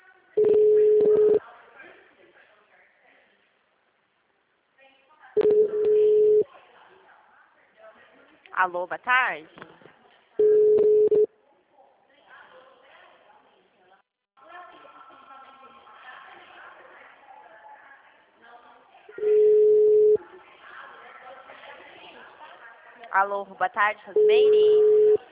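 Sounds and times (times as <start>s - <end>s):
unanswered telephone call ring tones: 0.4s - 1.4s, 5.4s - 6.4s, 10.4s - 11.3s, 19.2s - 20.2s, 24.2s - 25.2s
speech: 8.6s - 9.7s, 23.2s - 25.1s.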